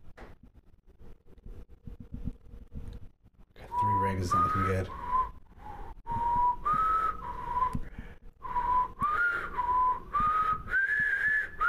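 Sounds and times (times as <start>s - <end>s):
person whistling a simple tune: 3.7s - 11.6s
speech: 4.2s - 5.0s.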